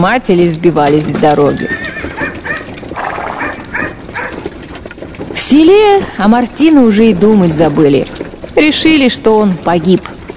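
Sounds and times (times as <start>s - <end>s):
speech: 0.0s - 1.8s, 5.5s - 10.1s
steady rustling background: 0.0s - 10.3s
dog barking at horses pulling a cart: 3.3s - 4.4s.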